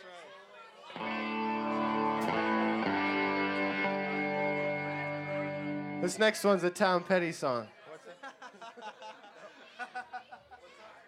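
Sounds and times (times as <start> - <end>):
heavily distorted electric guitar chords: 1.0 - 6.8
speech: 6.0 - 7.8
laughter: 7.9 - 11.0.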